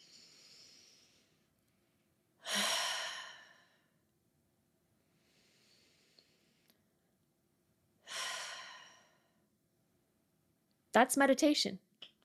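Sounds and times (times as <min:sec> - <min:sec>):
deep breathing in and out in a group breathing exercise: 0:00.0 - 0:01.6, 0:02.4 - 0:04.0, 0:05.0 - 0:07.0, 0:08.0 - 0:09.5
speech: 0:11.0 - 0:12.2.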